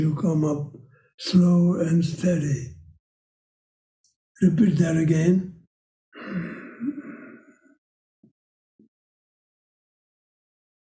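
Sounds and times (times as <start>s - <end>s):
speech: 0.0s - 2.8s, 4.4s - 5.5s
faint brief breath sounds: 6.2s - 7.8s
slow deep exhale in a breathing exercise: 6.2s - 7.8s.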